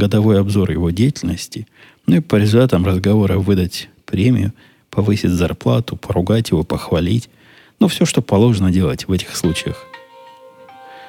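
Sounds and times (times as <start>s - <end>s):
speech: 0.0s - 10.0s
smartphone news notification chime: 9.4s - 11.0s.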